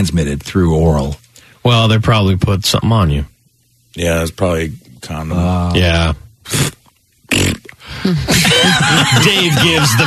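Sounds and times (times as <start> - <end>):
speech: 0.0 - 3.3, 3.9 - 6.8, 8.0 - 10.0
person blowing a raspberry with the lips: 6.4 - 8.4
laughter: 8.1 - 10.0.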